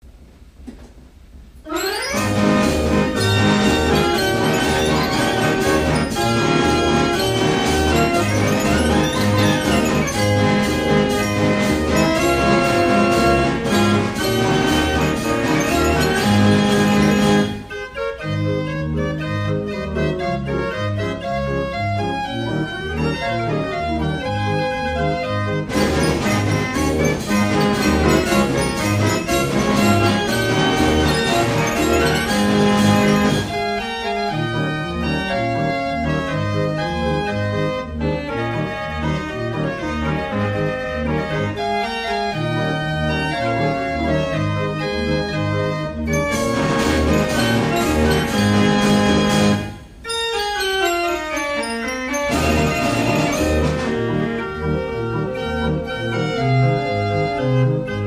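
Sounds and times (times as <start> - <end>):
barrel organ playing a march: 1.6 - 58.0.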